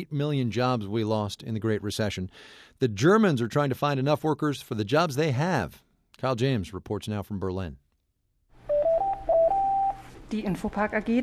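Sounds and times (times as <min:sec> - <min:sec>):
speech: 0:00.0 - 0:07.8, 0:10.3 - 0:11.2
telephone trilling with electronic tones: 0:08.6 - 0:10.1.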